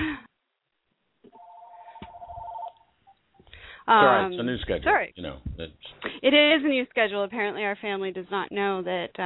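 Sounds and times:
telephone ringing with an incoming call: 1.3s - 3.0s
speech: 3.9s - 9.2s.

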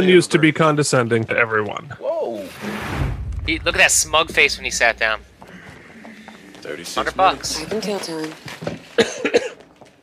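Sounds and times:
speech: 0.0s - 2.6s, 3.5s - 5.3s, 6.6s - 9.4s
faint breathy trail after coughing: 2.6s - 7.0s
person coughing harshly: 9.0s - 9.6s.

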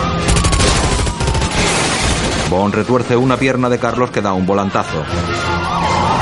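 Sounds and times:
police gunfire aimed at the rear tires of a fuel tanker truck: 0.2s - 2.6s
speech: 2.5s - 6.2s.

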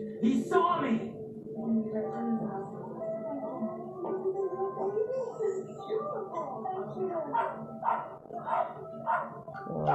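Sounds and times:
speech: 0.0s - 1.1s, 6.9s - 9.9s
indistinct voices: 1.6s - 9.9s
dog barking and yipping: 7.3s - 9.4s.

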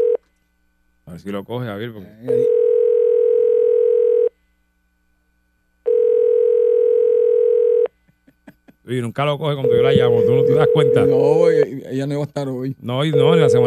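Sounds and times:
speech: 1.2s - 2.7s, 8.9s - 13.6s
telephone ringback tone while placing call: 2.4s - 4.3s, 5.9s - 7.9s, 9.6s - 11.7s, 13.0s - 13.6s.

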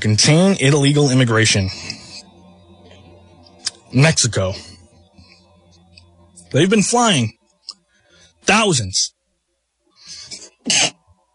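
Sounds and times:
speech: 0.0s - 2.0s, 3.9s - 4.7s, 6.5s - 7.4s, 8.4s - 9.2s, 10.6s - 10.9s
person sniffing: 10.0s - 10.9s
person sneezing: 10.2s - 11.0s.

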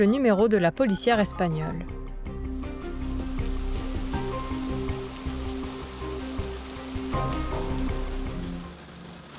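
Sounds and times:
speech: 0.0s - 2.0s
steady rain falling over a city: 2.7s - 9.3s.

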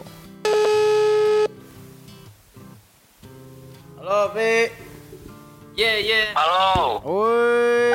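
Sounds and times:
electronic ringing tone from a phone line: 0.4s - 1.5s
speech: 4.3s - 4.8s, 5.8s - 7.8s.

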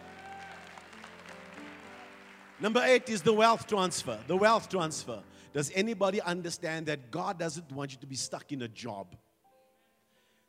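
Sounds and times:
crowd clapping: 0.0s - 5.1s
speech: 2.6s - 9.2s.

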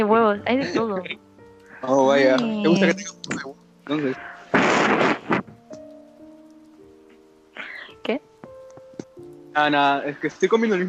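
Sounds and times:
speech: 0.0s - 5.1s, 8.0s - 8.3s, 9.6s - 10.8s
laughter: 0.6s - 1.2s, 1.9s - 4.2s
heavy rain: 4.0s - 5.6s.

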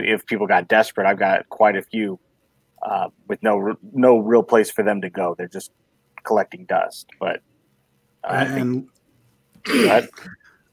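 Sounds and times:
speech: 0.0s - 2.2s, 2.8s - 7.5s, 8.2s - 9.0s, 9.6s - 10.4s
throat clearing: 8.3s - 8.8s, 9.6s - 10.4s.

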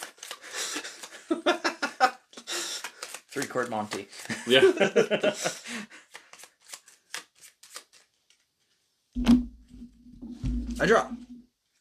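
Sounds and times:
deck of playing cards being riffled: 0.0s - 1.2s, 2.8s - 4.4s, 6.0s - 9.4s
laughter: 0.7s - 2.2s, 4.3s - 5.8s
speech: 1.3s - 1.6s, 3.4s - 6.0s, 10.8s - 11.2s
louder thump with a low resonant knock: 9.2s - 11.4s.

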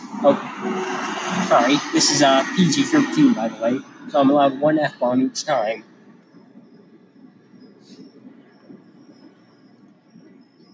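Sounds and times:
airplane rumbling overhead: 0.0s - 10.7s
speech: 0.2s - 5.9s.

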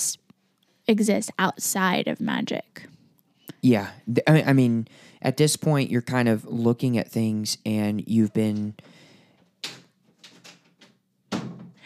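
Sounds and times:
speech: 0.9s - 3.0s, 3.6s - 9.0s
door banging open as child barges in: 9.7s - 11.8s
door thudding as it swings against something: 11.3s - 11.8s.

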